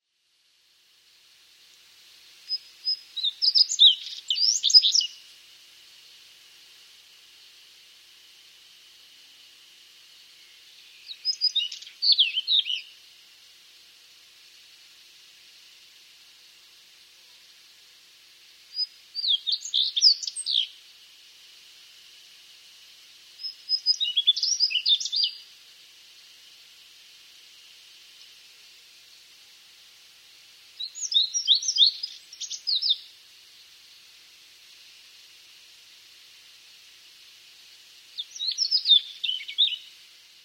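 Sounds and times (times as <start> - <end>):
Daurian redstart: 2.3 - 5.4, 8.7 - 29.6, 30.6 - 34.3, 36.6 - 40.4.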